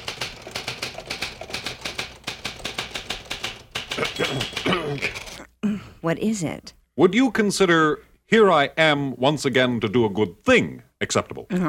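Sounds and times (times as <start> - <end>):
typewriter clacking: 0.0 - 5.4
speech: 4.0 - 5.4, 6.0 - 11.6.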